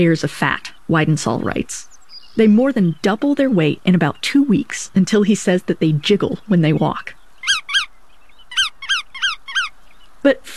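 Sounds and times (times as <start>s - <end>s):
speech: 0.0s - 7.2s, 10.2s - 10.5s
Bar-tailed Godwit calls: 5.5s - 9.9s.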